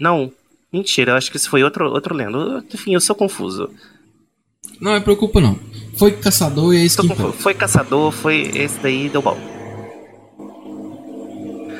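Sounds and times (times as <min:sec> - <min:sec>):
speech: 0:00.0 - 0:04.0, 0:04.8 - 0:09.6
truck passing by outside: 0:04.8 - 0:11.7.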